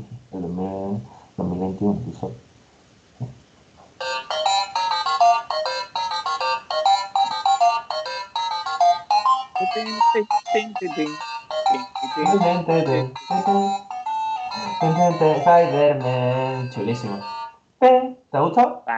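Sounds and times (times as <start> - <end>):
speech: 0.4 - 2.5, 9.8 - 13.9, 14.6 - 18.9
8-bit retro theme song phone ringtone: 4.0 - 17.6.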